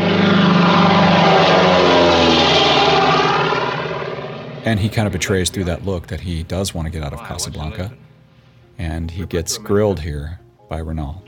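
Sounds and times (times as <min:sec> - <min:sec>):
propeller airplane droning overhead: 0:00.0 - 0:08.7
speech: 0:04.7 - 0:08.1, 0:08.8 - 0:11.2.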